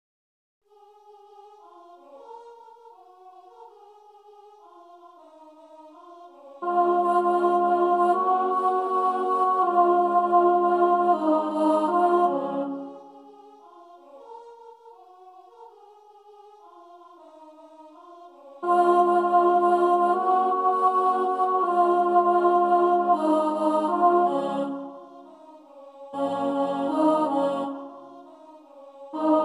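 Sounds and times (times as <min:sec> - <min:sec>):
soprano singing: 0:06.4 - 0:13.1, 0:18.6 - 0:25.4, 0:26.2 - 0:28.4, 0:29.2 - 0:29.4.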